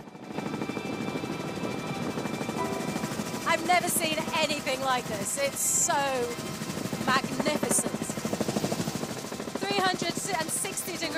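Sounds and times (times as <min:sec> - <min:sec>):
helicopter rotor thrum in flight over desert: 0:00.0 - 0:11.1
speech: 0:03.6 - 0:08.0, 0:09.8 - 0:11.1.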